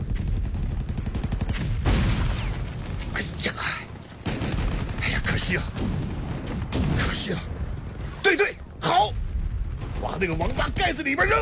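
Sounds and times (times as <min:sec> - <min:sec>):
machine gun fire covering an infantry charge: 0:00.0 - 0:03.6, 0:04.2 - 0:07.2
booming blasts: 0:00.0 - 0:11.4
speech: 0:05.5 - 0:06.0, 0:07.2 - 0:07.5, 0:08.3 - 0:09.2, 0:10.0 - 0:11.4.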